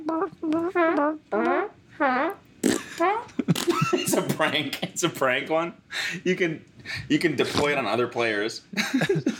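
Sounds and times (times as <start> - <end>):
voice imitating farts with buzzy wavering blasts: 0.0 - 3.8
speech: 0.1 - 1.6, 4.4 - 9.3.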